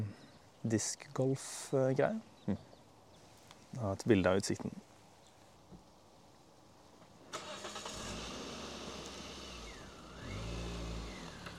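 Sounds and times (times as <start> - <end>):
speech: 0.0 - 2.7, 3.7 - 4.9
car engine noise as a car drives past: 7.4 - 11.5.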